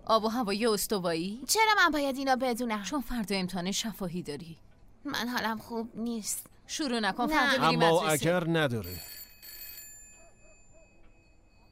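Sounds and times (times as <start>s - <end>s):
speech: 0.1s - 9.1s
telephone ringing: 7.3s - 10.3s.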